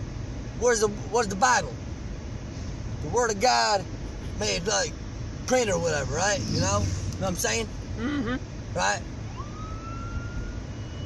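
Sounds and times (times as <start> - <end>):
constant low rumble of road and engine noise: 0.0 - 11.0
speech: 0.6 - 1.9, 3.0 - 9.1
ambulance siren wailing: 9.2 - 11.0.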